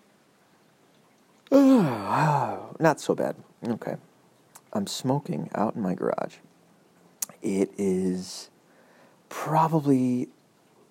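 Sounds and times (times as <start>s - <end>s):
person yawning: 1.5s - 2.7s
speech: 1.5s - 4.1s, 4.8s - 6.5s, 7.4s - 8.5s, 9.3s - 10.4s.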